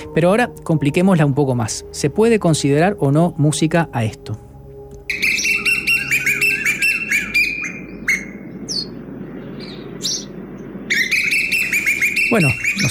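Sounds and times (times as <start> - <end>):
low rumble: 0.0 - 12.8
speech: 0.2 - 4.5, 12.3 - 12.8
birdsong: 4.1 - 12.8.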